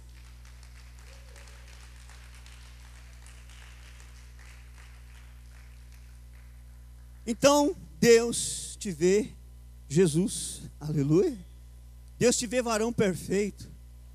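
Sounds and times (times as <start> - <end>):
audience applauding: 0.0 - 7.2
speech: 7.3 - 11.5, 12.2 - 13.7.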